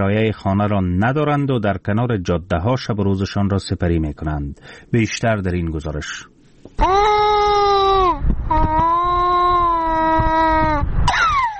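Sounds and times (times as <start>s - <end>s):
speech: 0.0s - 7.0s
hungry young child crying: 6.8s - 11.5s.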